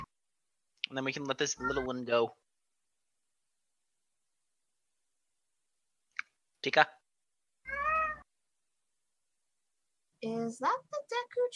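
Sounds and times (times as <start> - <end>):
speech: 0.9 - 2.4, 6.6 - 7.0, 10.2 - 11.5
cat meowing: 1.6 - 1.9, 7.6 - 8.3.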